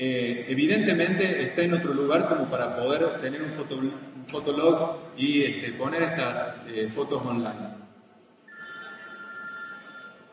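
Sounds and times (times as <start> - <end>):
speech: 0.0 - 7.8
soft noisy background: 0.0 - 10.3
mobile phone ringing: 8.5 - 10.3.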